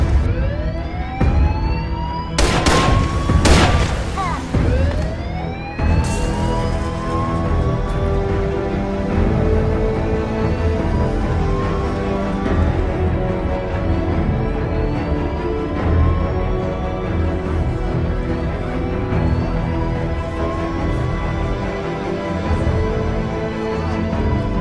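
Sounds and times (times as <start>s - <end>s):
dense constant roar: 0.0s - 24.5s
wailing sirens sweeping upward in pitch: 0.0s - 24.5s
warning shots fired: 2.4s - 5.1s.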